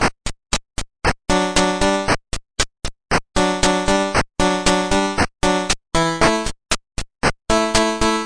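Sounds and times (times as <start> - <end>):
melodic 8-bit synth loop at 116 bpm: 1.3 - 2.2, 3.3 - 6.5, 7.5 - 8.2.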